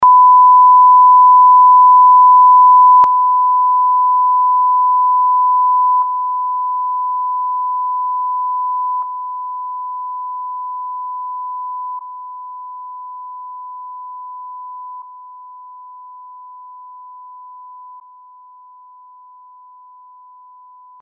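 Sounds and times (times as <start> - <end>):
attenuated 1 kHz tone: 0.0 - 15.1.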